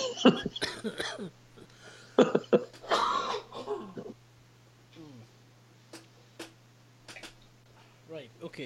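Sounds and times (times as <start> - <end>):
person clearing throat: 0.0 - 1.3, 2.2 - 4.1
rough coughing: 0.0 - 4.2
speech: 0.2 - 1.4.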